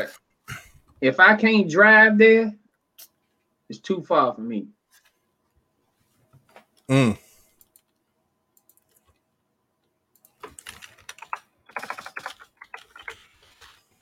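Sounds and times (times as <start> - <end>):
speech: 1.0 - 2.6, 3.7 - 4.8, 6.9 - 7.2
rapid uneven typing on a computer keyboard: 7.5 - 8.0, 8.6 - 9.2, 10.2 - 13.2.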